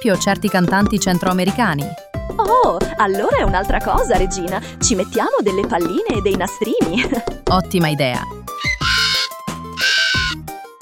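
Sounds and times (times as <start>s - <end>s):
speech: 0.0s - 8.8s
parrot squawking: 8.6s - 10.4s.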